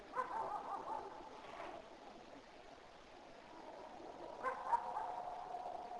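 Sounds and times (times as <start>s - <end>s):
neighbor's dog barking faintly far off: 0.1s - 1.4s, 4.4s - 5.8s.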